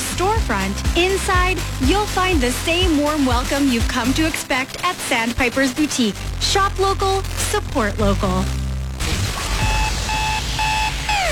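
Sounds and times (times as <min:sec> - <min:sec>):
speech: 0:00.5 - 0:08.6
alarm clock ringing with high electronic beep: 0:09.5 - 0:11.2.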